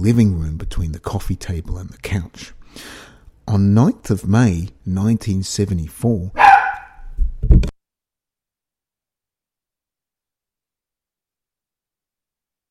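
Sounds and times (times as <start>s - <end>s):
speech: 0.0s - 6.4s
dog barking and yelping: 6.4s - 7.0s.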